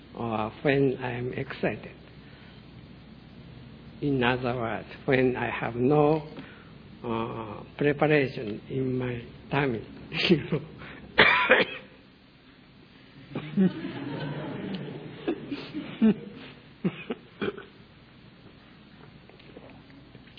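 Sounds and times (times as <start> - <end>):
speech: 0.2 - 2.0, 4.0 - 10.7, 11.5 - 11.8, 13.6 - 14.1, 16.0 - 16.3
person coughing: 11.2 - 12.0, 15.2 - 17.8
laughter: 13.3 - 17.3.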